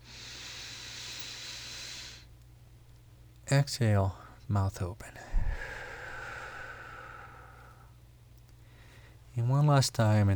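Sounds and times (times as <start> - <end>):
breath drawn in through the nose during a guided breathing exercise: 0.0 - 2.3, 5.2 - 7.9
speech: 3.5 - 5.4, 9.4 - 10.3.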